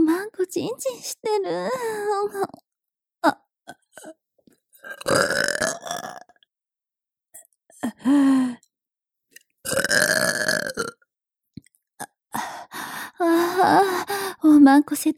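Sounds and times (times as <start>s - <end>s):
speech: 0.5s - 2.6s, 3.2s - 4.2s, 4.8s - 6.2s, 7.8s - 8.6s, 9.7s - 10.8s, 13.2s - 15.1s
loud burps: 4.8s - 6.5s, 9.6s - 11.1s.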